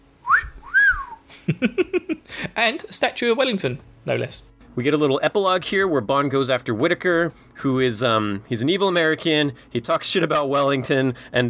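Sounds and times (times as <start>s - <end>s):
low steady hum: 0.0s - 11.4s
two-note wolf whistle in a film scene: 0.3s - 1.2s
speech: 1.5s - 11.4s.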